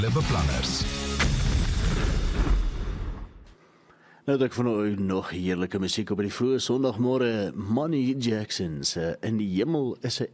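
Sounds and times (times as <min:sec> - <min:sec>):
speech: 0:00.0 - 0:02.6, 0:04.2 - 0:10.3
rumbling explosion: 0:01.2 - 0:03.4.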